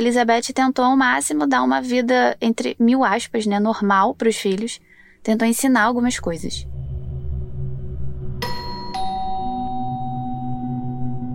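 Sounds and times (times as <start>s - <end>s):
speech: 0.0s - 6.7s
low musical drone: 6.0s - 11.3s
doorbell two-note ding-dong: 8.4s - 11.3s.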